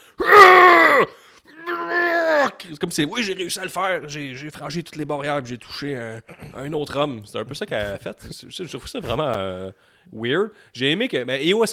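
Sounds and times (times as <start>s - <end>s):
voice imitating a man's loud strained yell: 0.2s - 2.6s
speech: 2.7s - 11.7s.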